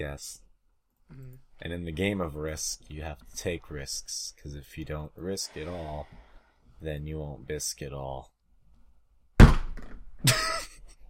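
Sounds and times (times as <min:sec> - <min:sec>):
speech: 0:00.0 - 0:00.4, 0:01.1 - 0:08.3, 0:10.2 - 0:10.5
head thudding onto desk: 0:09.4 - 0:10.0.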